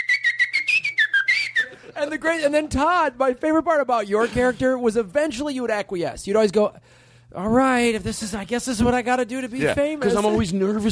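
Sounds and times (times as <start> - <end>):
person whistling a short lively tune: 0.0 - 1.9
speech: 1.9 - 10.8.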